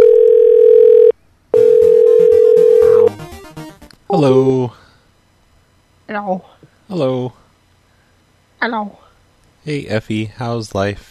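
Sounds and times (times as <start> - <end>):
telephone dial tone after a call is hung up: 0.0 - 3.1
speech: 4.1 - 4.8, 6.1 - 7.4, 8.6 - 9.0, 9.6 - 11.1.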